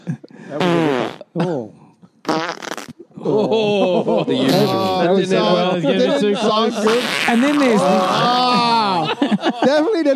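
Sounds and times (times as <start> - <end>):
speech: 0.1 - 1.7, 3.4 - 10.1
buzzy fart sound effect: 0.6 - 1.3, 2.2 - 3.1, 4.5 - 5.0, 6.8 - 8.8
loud overlapping laughter: 3.1 - 10.1
excited voices: 3.3 - 10.1.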